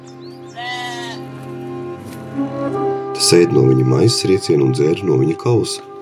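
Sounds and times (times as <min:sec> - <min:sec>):
young lamb bleating: 0:00.6 - 0:01.3
speech: 0:02.4 - 0:05.9.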